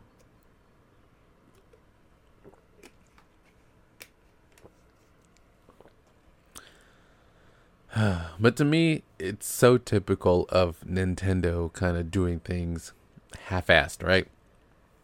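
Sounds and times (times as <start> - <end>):
soft steady hiss: 0.0 - 15.0
person sipping a drink: 1.5 - 3.5, 4.5 - 6.9
speech: 8.0 - 14.4.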